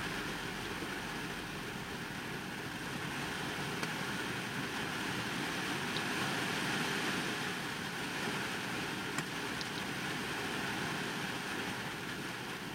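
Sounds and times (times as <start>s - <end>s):
heavy rain on a parked car's roof: 0.0s - 12.7s
sharp drips: 5.8s - 6.2s, 9.2s - 9.9s.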